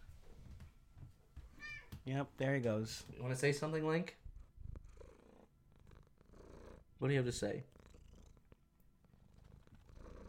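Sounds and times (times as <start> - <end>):
speech: 2.0 - 4.2, 7.0 - 7.8
cat purring: 4.1 - 10.2.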